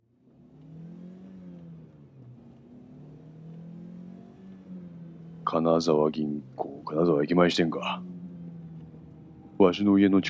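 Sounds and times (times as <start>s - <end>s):
car engine revving and accelerating away after handbrake release: 0.0s - 10.2s
speech: 5.5s - 8.2s, 9.6s - 10.2s.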